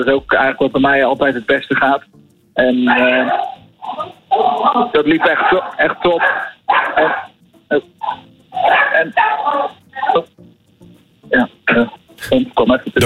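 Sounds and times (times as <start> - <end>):
speech: 0.0 - 3.5, 4.4 - 8.3, 8.9 - 10.3, 11.4 - 13.0
dogs barking at the arriving mail carrier: 2.7 - 10.4.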